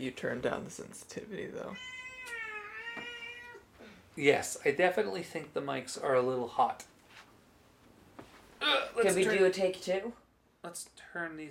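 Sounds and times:
speech: 0.0s - 2.4s, 4.2s - 6.9s, 8.6s - 11.4s
drawn-out whiny cat meow: 1.8s - 3.7s.

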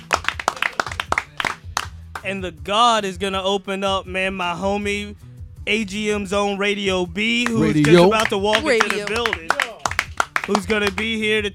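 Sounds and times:
small group of people clapping: 0.0s - 2.4s, 7.4s - 11.5s
speech: 2.2s - 9.5s, 10.5s - 11.5s.

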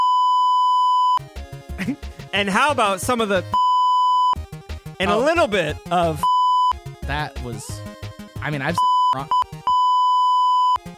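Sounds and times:
loud steady censor beep tone covering a word: 0.0s - 1.2s, 3.6s - 4.4s, 6.2s - 6.8s, 8.8s - 10.8s
speech: 1.8s - 3.6s, 5.0s - 6.3s, 7.1s - 7.8s, 8.4s - 9.4s.

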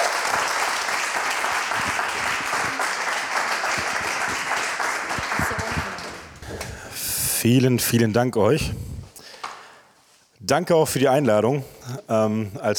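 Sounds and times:
audience applause welcoming a speaker at a small family-like gathering: 0.0s - 6.7s
speech: 7.4s - 8.9s, 10.5s - 12.7s.

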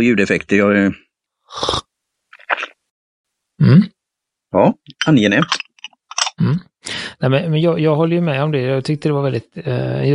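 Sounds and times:
speech: 0.0s - 1.8s, 3.6s - 5.6s, 6.4s - 10.1s
person slurping hot tea from a small cup: 1.5s - 2.8s
faint breath: 6.8s - 7.2s.

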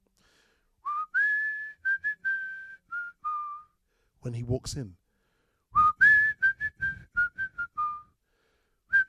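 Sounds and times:
man whistling a song melody for a film scene: 0.8s - 3.8s, 5.7s - 9.0s
speech: 4.2s - 5.0s.

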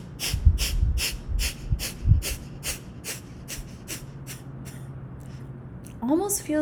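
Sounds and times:
deep breath in: 0.0s - 4.8s
sharp forceful breaths blown out through the nose: 0.0s - 5.5s.

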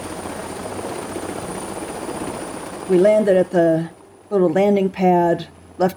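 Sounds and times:
helicopter rotor and engine roar: 0.0s - 5.9s
speech: 2.9s - 5.9s.

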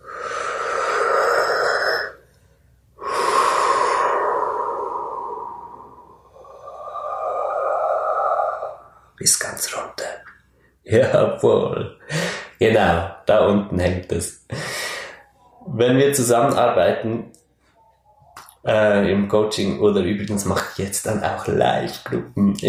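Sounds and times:
long whooshing exhale in a breathing exercise: 0.0s - 2.2s, 3.0s - 9.1s
person inhaling in a breathing exercise: 0.0s - 2.2s, 3.0s - 9.2s, 12.0s - 12.6s, 14.5s - 15.3s
speech: 10.9s - 12.0s, 12.6s - 14.4s, 15.8s - 17.4s, 18.6s - 22.6s.

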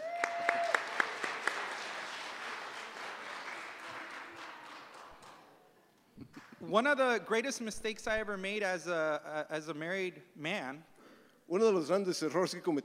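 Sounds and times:
audience applause: 0.0s - 5.5s
speech: 6.6s - 10.9s, 11.5s - 12.8s.

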